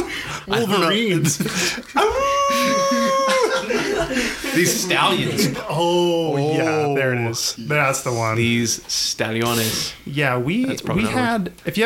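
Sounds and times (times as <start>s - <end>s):
laughter: 0.0s - 6.8s
speech: 0.4s - 3.2s, 4.0s - 11.8s
person imitating a wolf howl: 2.0s - 3.6s.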